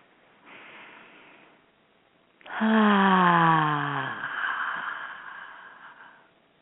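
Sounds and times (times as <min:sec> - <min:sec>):
person breathing deeply: 0:00.4 - 0:01.6, 0:02.4 - 0:06.4
person sighing: 0:02.4 - 0:06.3.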